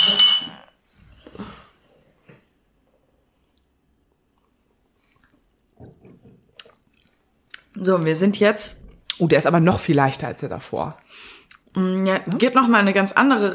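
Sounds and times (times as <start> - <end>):
wine glass clink: 0.0 - 0.7
speech: 7.8 - 13.5.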